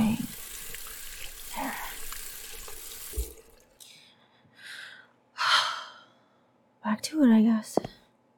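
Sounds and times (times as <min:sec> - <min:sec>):
water running from a tap as hands are washed: 0:00.0 - 0:03.8
speech: 0:07.0 - 0:07.9.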